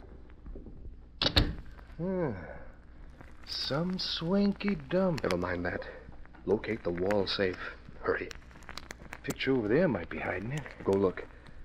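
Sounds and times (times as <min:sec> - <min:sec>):
door latch clicks: 0:01.2 - 0:01.6
speech: 0:02.0 - 0:02.6, 0:03.5 - 0:08.4, 0:09.3 - 0:11.3.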